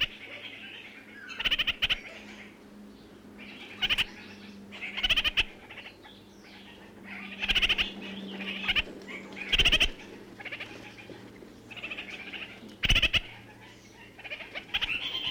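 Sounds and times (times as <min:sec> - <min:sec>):
low steady hum: 0:00.0 - 0:15.2
red-crowned parakeet harsh chatter in New Zealand: 0:01.3 - 0:02.4, 0:03.4 - 0:05.9, 0:07.1 - 0:10.6, 0:11.9 - 0:13.5, 0:14.2 - 0:15.2.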